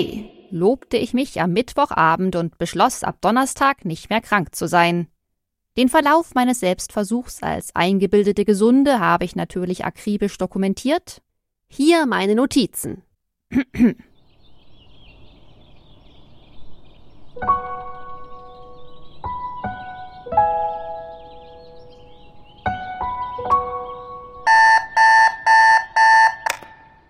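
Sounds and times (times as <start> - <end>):
speech: 0.0 - 5.1, 5.8 - 14.1, 17.4 - 17.6
alarm clock with stepping electronic tones and pulsing beeps: 24.5 - 26.7.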